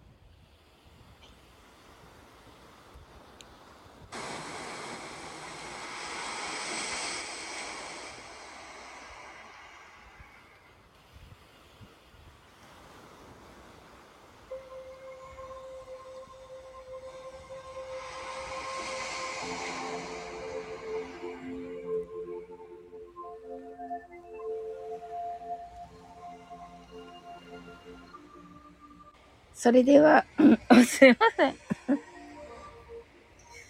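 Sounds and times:
ocean waves washing in with hissing surge: 0:00.3 - 0:33.6
steady humming tone: 0:04.2 - 0:11.0, 0:14.4 - 0:29.5, 0:30.2 - 0:33.6
speech: 0:29.6 - 0:31.6.

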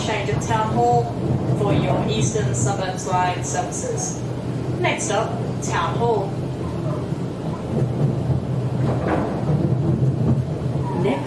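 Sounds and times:
faint rattles inside a commuter train: 0:00.0 - 0:11.2
low rumble and rushing noise inside a moving Sydney commuter train: 0:00.0 - 0:11.2
speech: 0:00.3 - 0:06.4, 0:11.1 - 0:11.2.

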